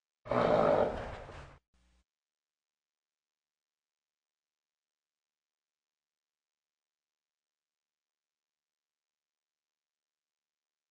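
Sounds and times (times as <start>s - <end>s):
horse snorting indoors: 0.3s - 1.6s.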